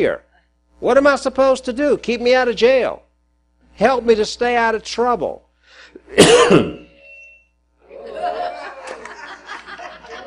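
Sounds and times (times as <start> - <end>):
speech: 0.0 - 3.0, 3.8 - 5.4, 6.0 - 6.8
loud harsh cough: 6.0 - 6.9
laughter: 7.9 - 10.2.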